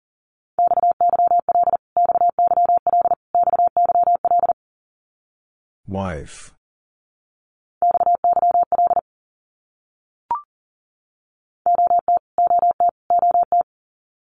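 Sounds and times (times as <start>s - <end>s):
fast Morse code beeping tone: 0.6s - 4.6s, 7.8s - 9.0s, 11.7s - 13.6s
speech: 5.9s - 6.6s.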